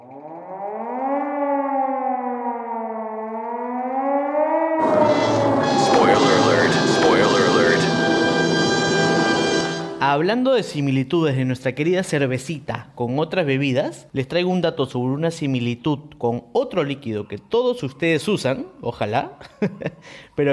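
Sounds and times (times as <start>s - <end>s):
wavering siren-like tone in a radio jingle: 0.0s - 10.0s
loud dense burst of radio jingle music and sound effects: 4.8s - 10.2s
speech: 10.1s - 20.5s
laughter: 19.3s - 20.1s.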